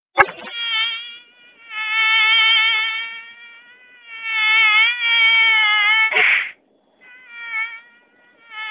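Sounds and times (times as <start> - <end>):
mosquito whine: 0.2 - 8.7
sharp noisy bursts: 0.2 - 8.7.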